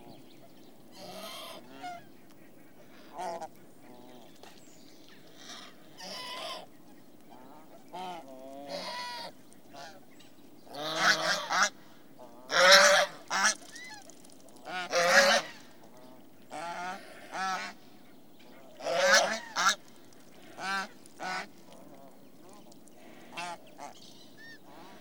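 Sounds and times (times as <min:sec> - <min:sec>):
swan giving nasal harmonic honking calls: 0:00.9 - 0:04.3, 0:05.2 - 0:10.0, 0:10.7 - 0:15.7, 0:18.6 - 0:24.9.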